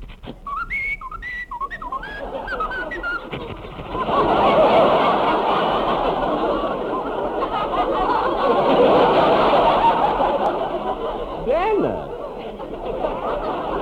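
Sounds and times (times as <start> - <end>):
person whistling a short lilting melody: 0.4 - 3.4
loud rushing audience noise: 1.5 - 13.7
laughter: 1.9 - 13.7.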